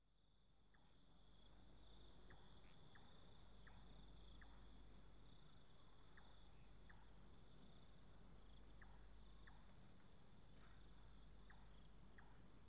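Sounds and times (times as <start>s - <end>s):
cicadas in daylight: 0.1s - 12.6s.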